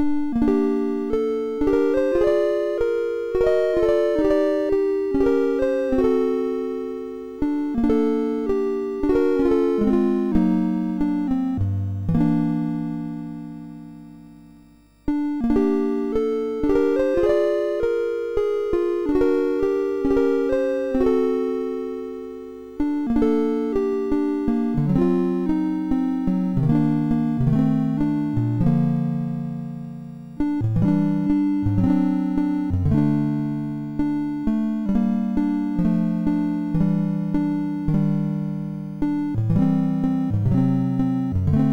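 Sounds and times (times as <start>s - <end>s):
chiptune nocturne on a sound chip: 0.0s - 41.7s.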